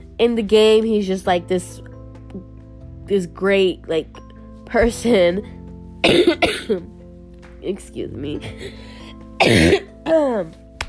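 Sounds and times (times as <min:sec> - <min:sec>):
speech: 0:00.2 - 0:02.5, 0:03.1 - 0:06.9, 0:07.6 - 0:10.6
man coughing: 0:06.0 - 0:06.8, 0:09.4 - 0:09.9.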